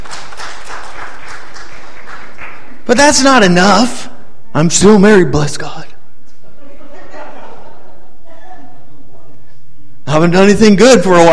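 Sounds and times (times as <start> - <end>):
audience applause: 0.0 - 2.9
speech: 2.9 - 5.9, 10.2 - 11.3
laughter: 6.4 - 9.4.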